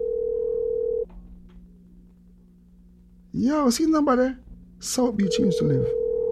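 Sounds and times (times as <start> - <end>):
telephone ringback tone during outgoing call: 0.0 - 1.0, 5.2 - 6.3
faint low hum: 0.0 - 6.3
speech: 3.4 - 6.0.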